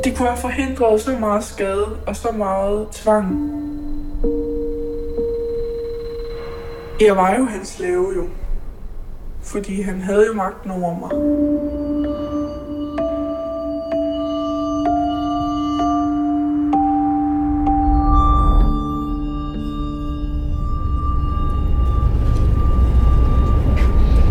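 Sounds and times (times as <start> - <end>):
speech: 0.0 - 4.3, 7.0 - 8.4, 9.4 - 11.8
steady low rumble inside a moving train: 0.0 - 24.2.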